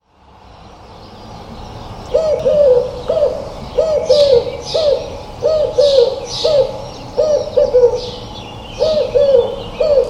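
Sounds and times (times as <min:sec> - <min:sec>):
bird calling with short arched hooting notes: 0:02.1 - 0:10.0.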